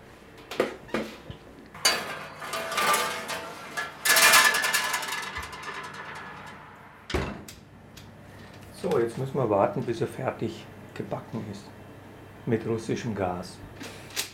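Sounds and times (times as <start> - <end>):
metal pans clattering as a strudel is put into the oven: 1.8 - 7.3
oven door clunking: 1.8 - 7.5
speech: 8.8 - 11.8, 12.4 - 13.7.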